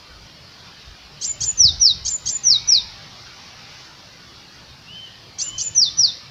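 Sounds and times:
Eurasian blue tit sharp ticks and down-slurred whistles: 1.2 - 3.0, 4.9 - 6.2.

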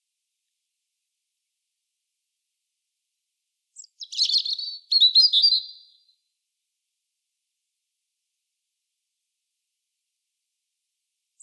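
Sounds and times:
European robin Erithacus rubecula singing: 3.8 - 6.1.

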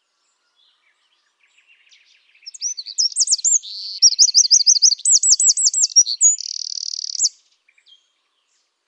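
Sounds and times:
Troglodytes troglodytes Eurasian wren song: 0.0 - 8.5.

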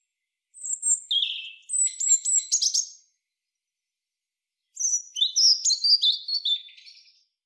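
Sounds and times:
European robin Erithacus rubecula singing: 0.0 - 3.1, 4.7 - 7.4.

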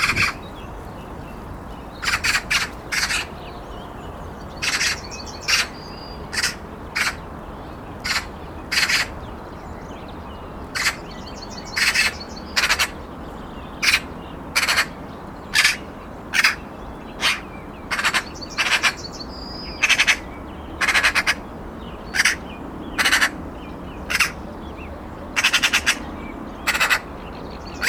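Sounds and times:
Eurasian magpie Pica pica uttering rasping chack notes: 2.0 - 3.3, 4.6 - 7.2, 8.0 - 9.1, 10.8 - 11.1, 11.8 - 13.0, 13.8 - 16.6, 17.2 - 19.1, 19.7 - 21.4, 22.1 - 22.4, 23.0 - 23.4, 24.1 - 24.4, 25.4 - 27.1.

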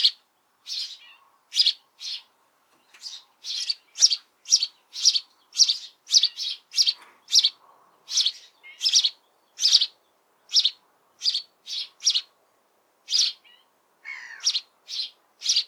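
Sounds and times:
house sparrow Passer domesticus chirping persistently: 0.0 - 2.3, 2.9 - 12.3, 13.1 - 15.6.

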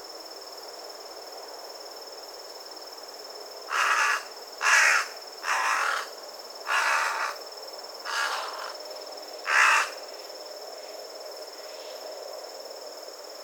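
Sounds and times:
carrion crow cawing: 3.7 - 6.1, 6.7 - 7.4, 8.1 - 8.8, 9.5 - 10.0.

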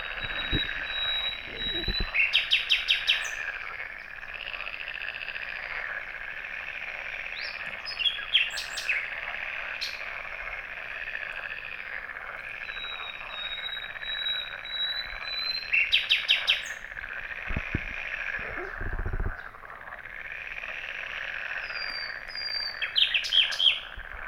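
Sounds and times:
common nightingale song: 0.0 - 4.4, 7.2 - 9.2, 12.5 - 17.0, 21.5 - 24.2
background bird chorus: 0.0 - 24.2
low knocking thumps: 17.5 - 19.4.

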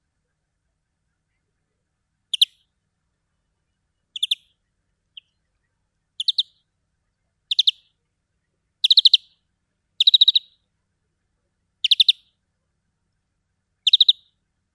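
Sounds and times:
European greenfinch (Chloris chloris) giving chattering calls: 4.2 - 4.4, 6.2 - 6.5, 7.5 - 7.8, 8.8 - 9.3, 10.0 - 10.5, 11.8 - 12.2, 13.9 - 14.2.

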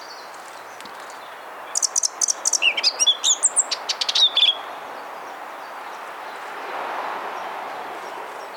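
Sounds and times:
Eurasian blackcap Sylvia atricapilla song: 0.0 - 6.6, 7.4 - 8.5.

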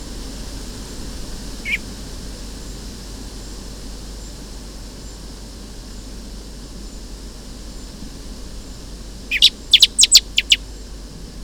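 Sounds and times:
Turdus merula common blackbird chink calls: 1.6 - 1.8, 9.3 - 10.7.

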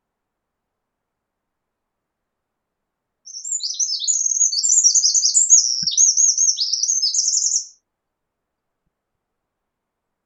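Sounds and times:
Eurasian wren song: 3.3 - 7.8.

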